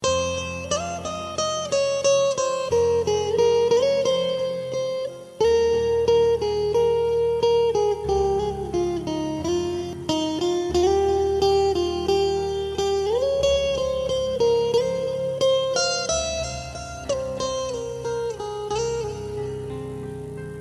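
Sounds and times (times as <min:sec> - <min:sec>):
sad guitar ringtone: 0:00.0 - 0:20.6.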